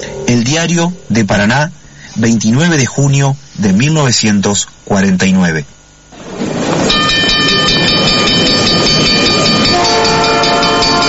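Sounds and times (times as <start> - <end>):
train rolling along with a loud steady rumble: 0.0 - 1.8, 6.2 - 11.0
speech: 0.0 - 5.8
train horn sounding sustained multi-tone blasts: 7.4 - 11.0.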